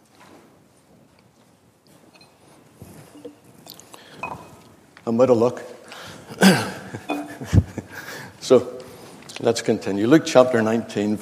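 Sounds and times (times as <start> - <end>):
small mouth and cup noises: 2.1 - 4.7
person sipping and swallowing water: 3.0 - 4.5
speech: 5.1 - 5.7, 6.4 - 7.6, 8.5 - 8.8, 9.4 - 11.2.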